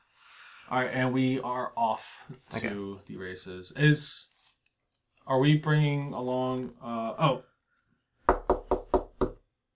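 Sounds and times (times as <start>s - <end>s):
speech: 0.7s - 4.3s, 5.3s - 7.5s
firm knocks on a door: 8.3s - 9.4s.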